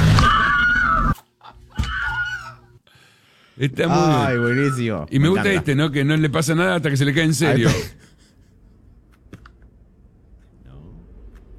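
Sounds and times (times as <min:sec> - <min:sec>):
dropped game controller emitting a scream: 0:00.0 - 0:01.2, 0:03.9 - 0:05.0
speech: 0:03.6 - 0:08.0.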